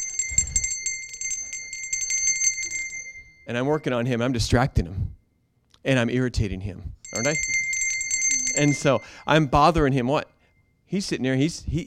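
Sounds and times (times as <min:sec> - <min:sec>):
small pink hand bell ringing: 0:00.0 - 0:04.1, 0:07.0 - 0:10.7
speech: 0:03.5 - 0:05.2, 0:05.8 - 0:07.6, 0:08.6 - 0:10.3, 0:10.9 - 0:11.8.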